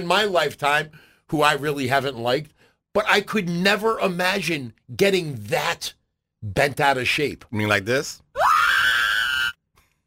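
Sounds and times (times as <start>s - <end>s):
speech: 0.0s - 8.5s
person screaming shrilly: 8.4s - 9.6s.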